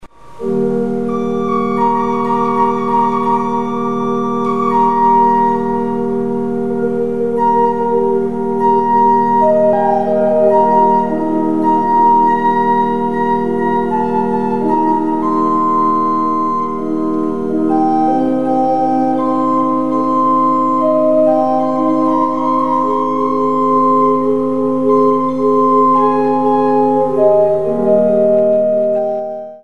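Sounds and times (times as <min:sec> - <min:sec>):
micro organ: 0:00.0 - 0:29.6.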